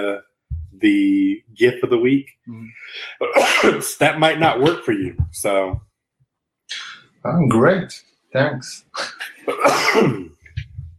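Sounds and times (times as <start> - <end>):
speech: 0.0 - 5.9, 6.7 - 10.3
person sneezing: 3.2 - 3.9, 9.5 - 10.3.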